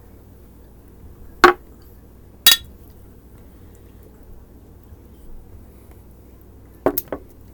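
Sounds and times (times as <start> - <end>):
drinking glasses clinking in a toast: 2.5 - 2.7.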